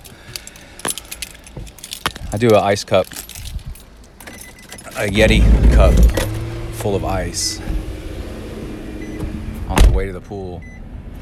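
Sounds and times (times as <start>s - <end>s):
bunch of keys jangling: 0.0s - 5.2s
speech: 2.3s - 3.2s, 5.0s - 7.8s, 10.0s - 10.7s.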